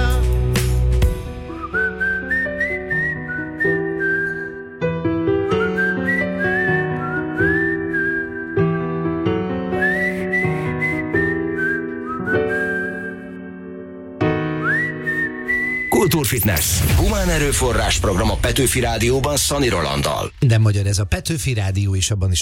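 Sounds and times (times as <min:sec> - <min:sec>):
steady instrumental backing music: 0:00.0 - 0:16.2
person whistling a bright melody: 0:01.1 - 0:16.8
speech: 0:16.5 - 0:22.3.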